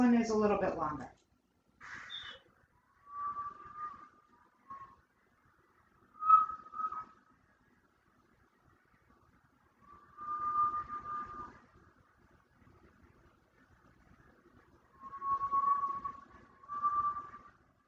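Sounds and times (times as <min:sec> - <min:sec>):
speech: 0:00.2 - 0:01.2
faint steady whistle-like tones: 0:01.8 - 0:05.2, 0:05.8 - 0:07.5, 0:09.8 - 0:11.9, 0:14.8 - 0:17.7
birds chirping: 0:01.9 - 0:02.4.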